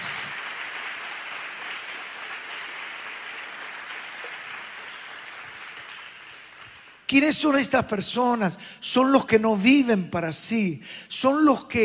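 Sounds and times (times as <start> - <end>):
large audience applauding in a reverberant hall: 0.0 - 7.1
speech: 7.1 - 11.8.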